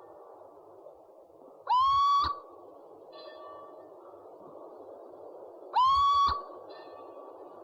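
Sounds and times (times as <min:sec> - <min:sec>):
constant hum: 0:00.0 - 0:07.6
owl whistled call: 0:01.7 - 0:02.5, 0:05.7 - 0:07.0.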